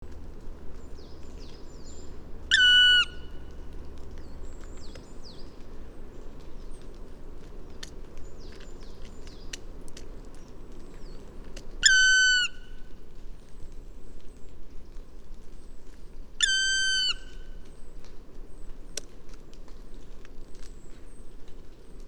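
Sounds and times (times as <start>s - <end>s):
black woodpecker call: 1.8s - 3.6s, 11.8s - 12.8s, 16.4s - 17.5s.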